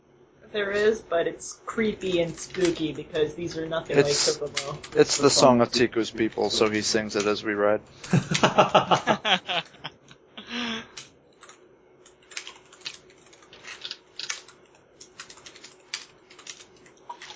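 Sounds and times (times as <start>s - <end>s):
speech: 0.5s - 9.8s
laughter: 8.0s - 10.1s
fingers typing on a computer keyboard: 11.0s - 17.3s.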